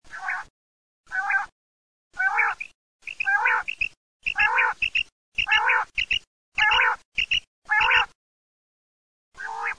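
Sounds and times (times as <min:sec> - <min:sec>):
quail calling: 0:00.1 - 0:00.5, 0:01.1 - 0:01.5, 0:02.1 - 0:08.2, 0:09.4 - 0:09.7.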